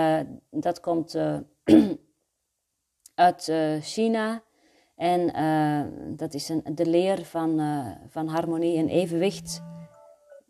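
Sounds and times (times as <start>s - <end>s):
speech: 0.0s - 2.0s, 3.2s - 9.8s
electronic alarm clock beeping: 9.1s - 10.4s.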